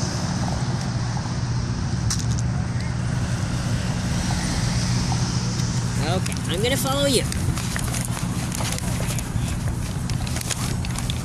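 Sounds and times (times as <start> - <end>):
road traffic rumble: 0.0 - 11.2
speech: 6.2 - 7.4
clicks and rattles: 7.3 - 11.2.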